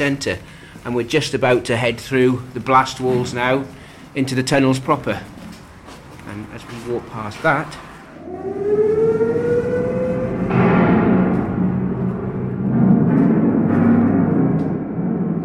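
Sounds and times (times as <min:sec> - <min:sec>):
speech: 0:00.0 - 0:05.3, 0:06.3 - 0:08.6
air raid siren wailing: 0:08.0 - 0:15.4
dense rumbling noise: 0:08.0 - 0:15.4.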